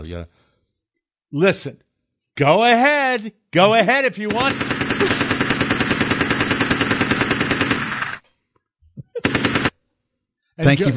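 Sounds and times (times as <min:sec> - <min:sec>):
speech: 0:00.0 - 0:00.5, 0:01.3 - 0:05.2, 0:10.6 - 0:10.9
automatic gunfire: 0:04.2 - 0:08.2, 0:09.2 - 0:09.8.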